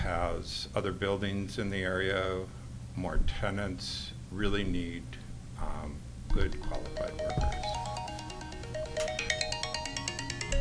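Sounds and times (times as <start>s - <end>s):
low hum: 0.0s - 10.5s
speech: 0.1s - 7.7s
mobile phone ringing with an electronic melody: 6.5s - 10.5s.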